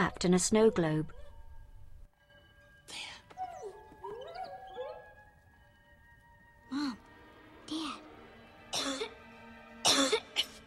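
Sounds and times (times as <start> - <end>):
speech: 0.0 - 1.2, 2.9 - 3.2
woman coughing up a key: 8.7 - 9.2, 9.8 - 10.5.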